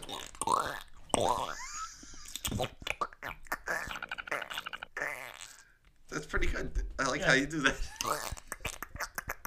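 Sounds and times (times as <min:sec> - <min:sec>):
voice imitating a queef with wet sputtering mouth noises: 0:00.0 - 0:05.8, 0:07.8 - 0:09.4
speech: 0:07.2 - 0:08.2.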